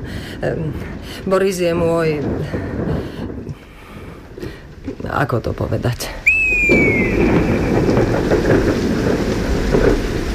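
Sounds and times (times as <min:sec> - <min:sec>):
deep rumble of thunder: 0:00.0 - 0:10.3
steady loud rain pouring down while the sun shines: 0:00.0 - 0:10.3
speech: 0:00.4 - 0:03.3, 0:05.1 - 0:06.8
faint high sliding whistle: 0:06.3 - 0:08.0.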